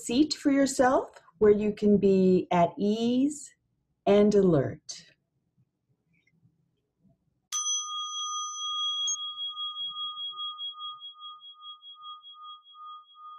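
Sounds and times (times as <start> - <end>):
speech: 0.0 - 5.1
meditation bell struck and ringing: 7.6 - 13.3.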